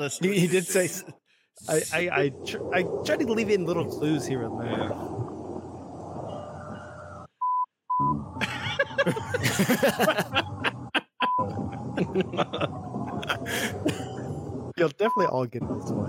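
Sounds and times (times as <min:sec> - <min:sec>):
speech: 0:00.0 - 0:05.2, 0:09.0 - 0:10.4, 0:12.1 - 0:14.0, 0:14.8 - 0:16.0
censor beeps with steady high tones: 0:07.4 - 0:08.2, 0:15.0 - 0:15.4
laughter: 0:08.4 - 0:14.4.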